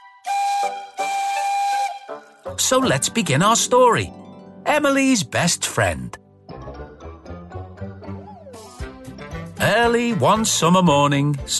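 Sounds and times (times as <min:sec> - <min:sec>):
green steam tender engine whistle blasts: 0:00.2 - 0:02.3
speech: 0:02.5 - 0:06.2, 0:09.6 - 0:11.5.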